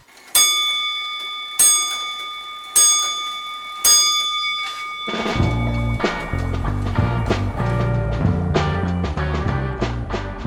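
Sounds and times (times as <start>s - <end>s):
time signal pips: 0.4s - 7.6s
dense music: 5.4s - 10.4s.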